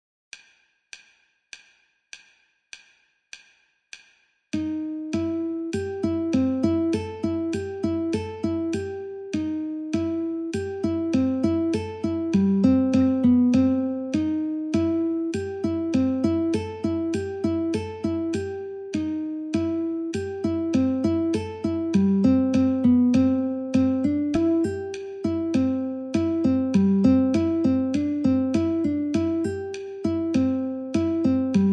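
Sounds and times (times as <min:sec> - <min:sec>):
guitar playing a folk tune in C: 0:04.6 - 0:31.7
metronome ticking: 0:04.6 - 0:31.7.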